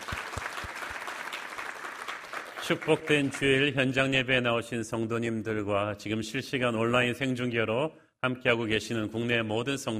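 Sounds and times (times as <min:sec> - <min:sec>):
congregation applauding: 0:00.0 - 0:03.8
speech: 0:02.7 - 0:09.9.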